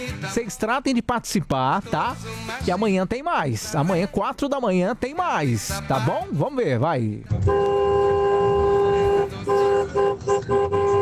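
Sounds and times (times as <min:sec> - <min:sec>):
speech: 0:00.2 - 0:07.8
traffic rumble: 0:07.2 - 0:10.9
car horn honking in long and short bursts: 0:07.3 - 0:10.9.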